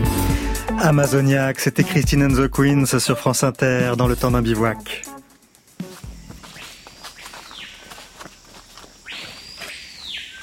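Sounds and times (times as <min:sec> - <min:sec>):
faint forest background: 0:00.1 - 0:10.3
speech: 0:00.8 - 0:05.1
soft rustling footsteps: 0:05.3 - 0:10.3
screaming piha whistled territorial calls: 0:06.4 - 0:08.2, 0:09.0 - 0:10.3.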